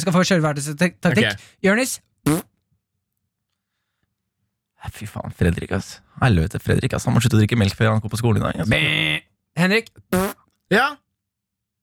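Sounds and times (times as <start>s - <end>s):
speech: 0.0s - 2.5s, 4.8s - 11.0s
fart: 2.3s - 2.5s, 10.1s - 10.4s.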